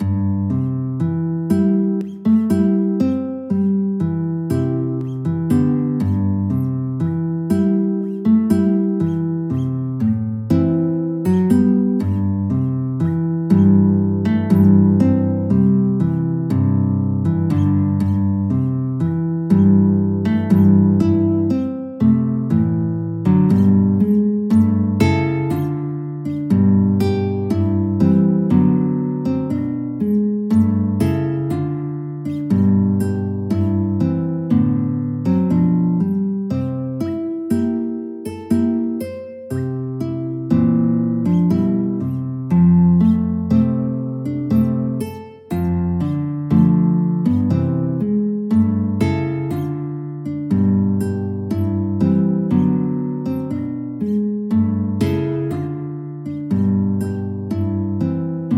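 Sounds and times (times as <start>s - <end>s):
guitar melody: 0.0s - 58.5s.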